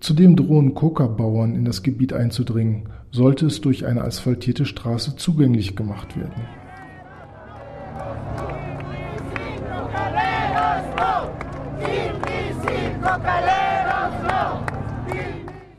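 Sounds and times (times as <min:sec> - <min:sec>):
speech: 0:00.0 - 0:06.6
protest march crowd chanting slogans in La Paz: 0:06.0 - 0:15.7.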